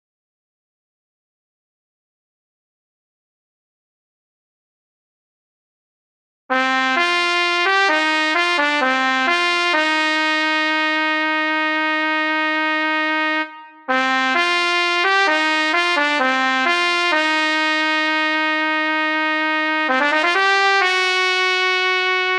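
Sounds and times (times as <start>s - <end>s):
flugelhorn: 6.5s - 22.3s.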